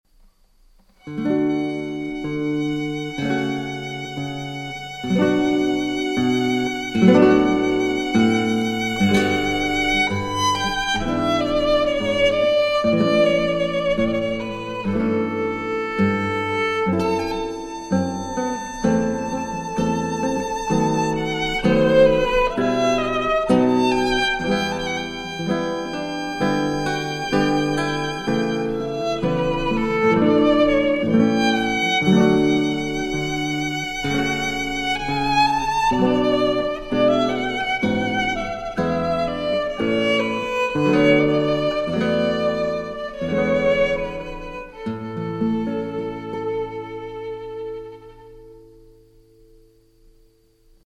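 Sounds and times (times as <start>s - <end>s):
guitar playing a baroque air: 0.8s - 50.4s
violin playing a baroque air: 1.0s - 49.4s.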